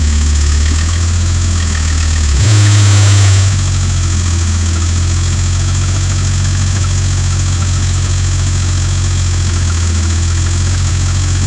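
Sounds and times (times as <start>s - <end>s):
powerful V12 car engine running: 0.0s - 11.4s.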